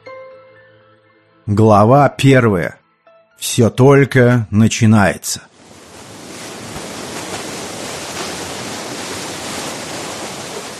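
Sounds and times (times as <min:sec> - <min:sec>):
speech: 0:01.5 - 0:02.8, 0:03.4 - 0:05.5
boat paddle wheel blades churning water: 0:05.5 - 0:10.7
faint splashes: 0:05.6 - 0:10.7.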